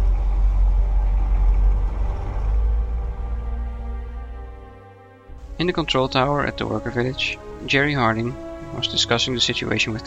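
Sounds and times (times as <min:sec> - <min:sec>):
car engine rumbling as the car pulls away: 0:00.0 - 0:09.7
speech: 0:05.6 - 0:10.0.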